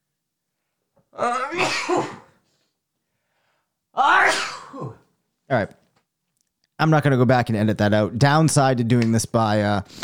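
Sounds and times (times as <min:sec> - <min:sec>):
speech: 0:01.1 - 0:02.2, 0:05.5 - 0:05.8, 0:06.8 - 0:10.0
person sneezing: 0:01.2 - 0:02.4, 0:04.0 - 0:05.1.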